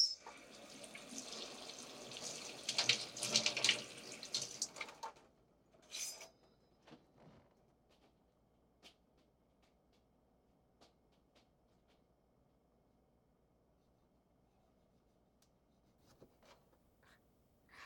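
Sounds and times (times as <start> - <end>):
tap water running over cherry tomatoes being washed: 0.1 - 5.2.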